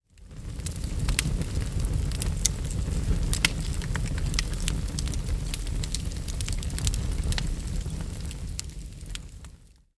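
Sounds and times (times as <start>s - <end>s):
firewood: 0.1s - 9.9s.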